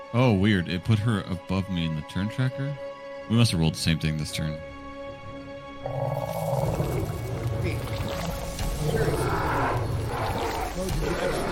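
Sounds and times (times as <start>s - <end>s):
speech: 0.1s - 4.7s, 5.8s - 6.5s
lions roaring as game ambience: 5.8s - 7.6s, 8.6s - 11.5s.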